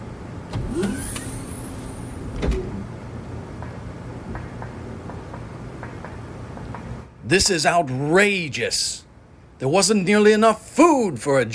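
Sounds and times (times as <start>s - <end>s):
mechanical door sliding open with a high whirring hiss for a prisoner transfer: 0.4s - 3.0s
solid clunks of a mechanical door: 0.5s - 2.9s
speech: 7.3s - 9.0s, 9.6s - 11.5s.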